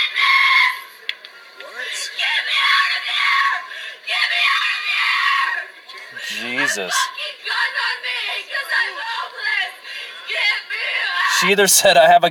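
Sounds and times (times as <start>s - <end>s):
woman screeching and shrieking in anguish: 1.8s - 11.4s
woman gasping: 6.2s - 7.1s
speech: 6.8s - 7.1s, 11.4s - 12.3s.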